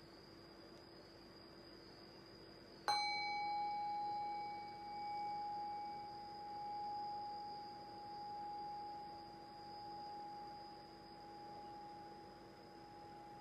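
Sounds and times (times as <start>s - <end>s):
meditation bell struck and ringing: 2.9s - 13.3s.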